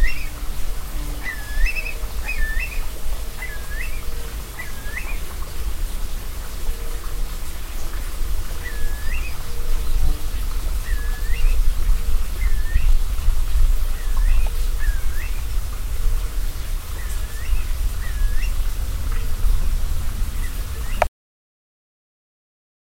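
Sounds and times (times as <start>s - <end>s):
curlew calling: 0.0s - 0.6s, 1.2s - 13.2s, 13.9s - 15.5s, 16.4s - 19.4s, 20.4s - 21.1s
low rumble: 9.4s - 21.0s.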